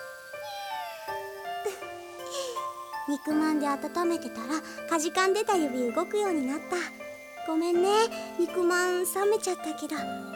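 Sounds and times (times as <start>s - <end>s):
cat meowing outdoors in cold weather: 0.4s - 1.4s
speech: 3.1s - 10.3s.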